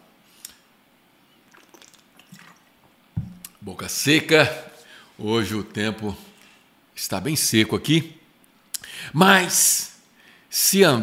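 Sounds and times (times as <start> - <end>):
liquid trickling: 1.4 - 3.5
person sipping water: 1.4 - 3.6
small wet slurps: 1.5 - 2.7
soft low thud: 3.2 - 3.4
speech: 3.7 - 6.3, 7.0 - 8.2, 9.1 - 9.9, 10.5 - 11.0.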